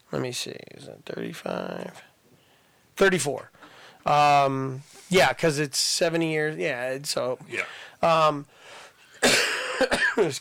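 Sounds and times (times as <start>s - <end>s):
speech: 0.1s - 2.1s, 3.0s - 8.8s, 9.8s - 10.3s
quiet breathing: 2.0s - 4.1s, 7.5s - 9.2s
person coughing: 9.2s - 10.3s.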